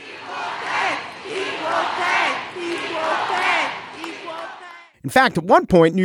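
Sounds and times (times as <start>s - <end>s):
large outdoor crowd chanting a two-beat cheer at a ticker-tape parade: 0.0s - 5.0s
speech: 5.0s - 6.0s.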